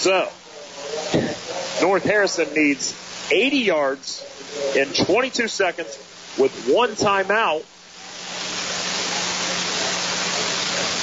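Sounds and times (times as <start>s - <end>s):
speech: 0.0s - 0.4s, 1.1s - 7.7s
light rain falling: 0.0s - 11.0s.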